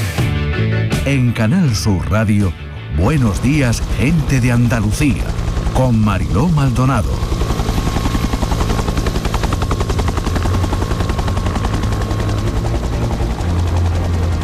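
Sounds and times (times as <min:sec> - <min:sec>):
speech: 0:01.1 - 0:07.4
firefighting helicopter rotor blades chopping over flames at a fire: 0:03.0 - 0:14.4.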